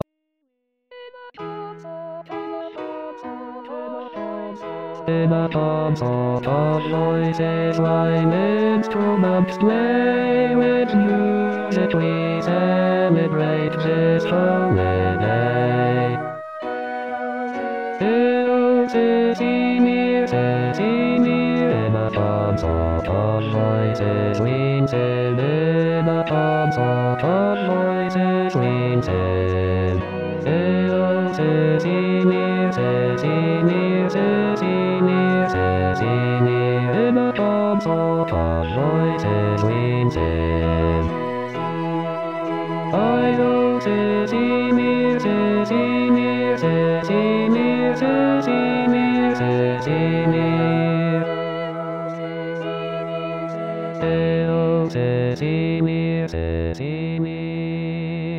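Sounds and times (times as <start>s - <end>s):
baroque bass line: 5.1s - 58.3s.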